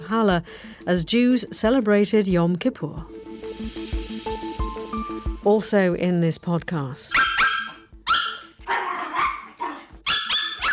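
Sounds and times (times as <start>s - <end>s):
speech: 0.1s - 3.9s, 5.4s - 7.3s
dog barking: 7.1s - 10.7s.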